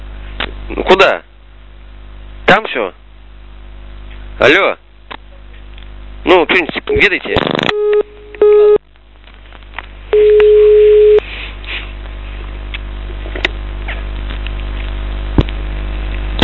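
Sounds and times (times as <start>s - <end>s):
speech: 0.7s - 1.3s, 2.5s - 3.0s, 4.4s - 4.8s, 6.2s - 8.8s
telephone busy tone after a call disconnected: 7.7s - 8.8s, 10.1s - 11.2s
faint telephone line hiss: 10.1s - 11.2s.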